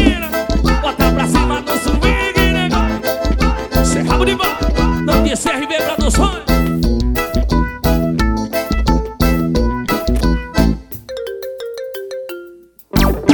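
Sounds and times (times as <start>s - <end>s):
loud music: 0.0s - 11.1s, 12.9s - 13.3s
phone's melodic ringtone of bright electronic tones: 11.1s - 12.8s.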